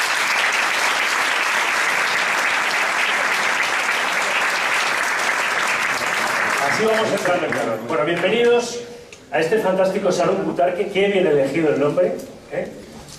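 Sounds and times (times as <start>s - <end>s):
large audience clapping: 0.0s - 8.3s
speech: 6.8s - 12.8s.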